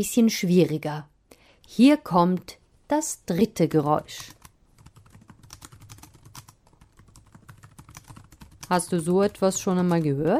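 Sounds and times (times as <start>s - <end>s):
speech: 0.0s - 1.1s, 1.7s - 4.4s, 8.7s - 10.3s
fingers typing text on a computer keyboard with plastic keys: 4.0s - 10.3s.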